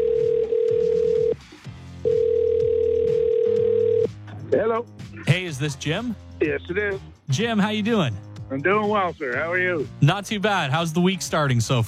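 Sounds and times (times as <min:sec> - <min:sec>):
telephone ringing tone as a contest finalist is called: 0:00.0 - 0:01.4, 0:02.0 - 0:04.1
speech: 0:04.5 - 0:11.8.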